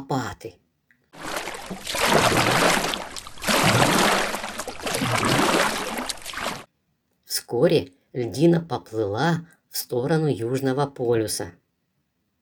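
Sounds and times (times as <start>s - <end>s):
speech: 0.0s - 0.6s, 1.7s - 2.8s, 7.5s - 11.6s
bear on an ice floe paddling the water with its paws: 1.2s - 6.7s.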